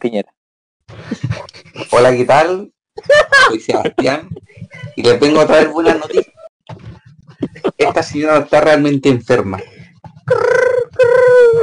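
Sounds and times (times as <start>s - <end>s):
speech: 0.0s - 6.9s, 7.5s - 10.7s
laughter: 1.0s - 2.2s, 3.0s - 8.4s
person imitating a pigeon's cooing: 10.2s - 11.6s.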